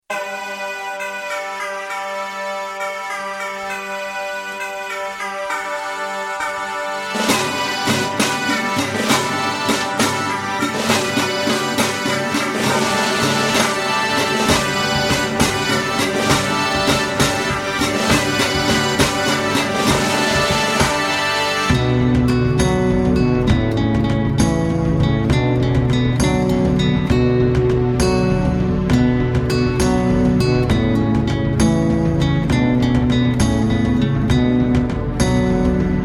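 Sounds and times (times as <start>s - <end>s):
bagpipes: 0.1s - 22.4s
drums: 6.9s - 36.0s.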